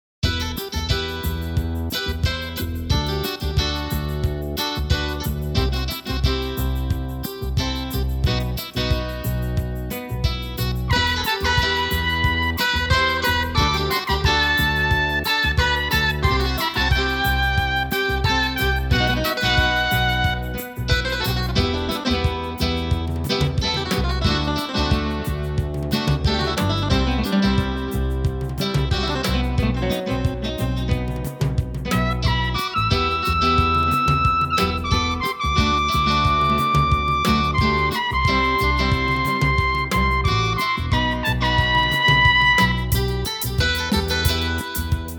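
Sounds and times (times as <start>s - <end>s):
Mellotron Micro Guitar: 0.2s - 45.1s
Mellotron Trumpet: 10.9s - 22.7s, 31.9s - 45.0s.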